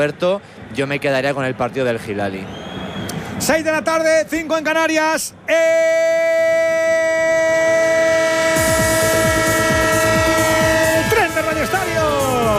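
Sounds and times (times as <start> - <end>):
speech: 0.0 - 2.7, 3.4 - 6.7
layered train horn tones: 7.5 - 12.5.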